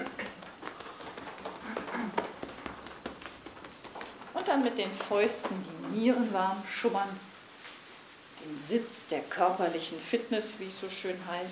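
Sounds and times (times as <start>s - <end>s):
hands lightly patting down a chest: 0.0s - 6.1s
faint rustle: 0.0s - 10.5s
speech: 4.5s - 7.3s, 8.6s - 11.5s.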